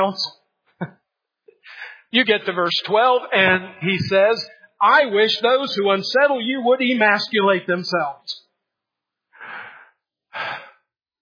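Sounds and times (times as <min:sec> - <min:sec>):
speech: 0:00.0 - 0:01.0, 0:02.1 - 0:08.4
preacher taking a deep breath: 0:01.6 - 0:02.1, 0:09.4 - 0:10.9.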